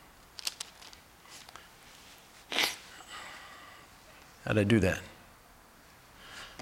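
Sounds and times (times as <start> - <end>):
pages of a book being turned: 0.4 - 2.0
speech: 4.4 - 5.1.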